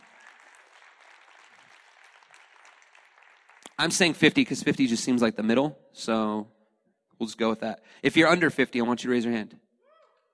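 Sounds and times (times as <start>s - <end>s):
large audience clapping: 0.0s - 4.5s
speech: 3.8s - 6.6s, 7.2s - 9.6s.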